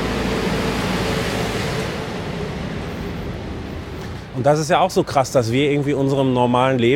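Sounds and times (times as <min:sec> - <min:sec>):
garbage truck rumbling past on the street: 0:00.0 - 0:04.5
speech: 0:04.4 - 0:06.9.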